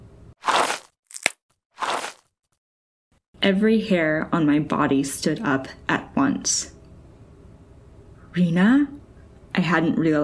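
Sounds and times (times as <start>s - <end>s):
footsteps crunching on loose gravel: 0.4s - 2.2s
speech: 3.4s - 6.8s, 8.4s - 9.0s, 9.6s - 10.2s.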